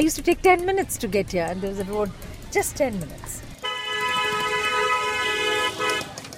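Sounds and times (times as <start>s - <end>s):
speech: 0.0s - 3.4s
rumble of congested rush hour road traffic: 0.0s - 6.3s
loud car horn honking in rush hour traffic: 3.6s - 6.2s.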